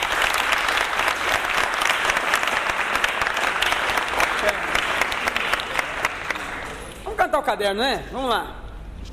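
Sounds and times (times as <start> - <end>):
crowd applauding in honor of a deceased man: 0.0 - 7.0
speech: 7.4 - 8.6.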